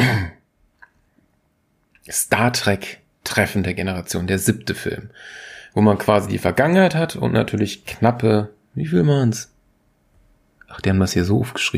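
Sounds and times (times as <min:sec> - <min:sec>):
raspy throat clearing: 0:00.0 - 0:00.5
speech: 0:02.1 - 0:09.5, 0:10.7 - 0:11.7.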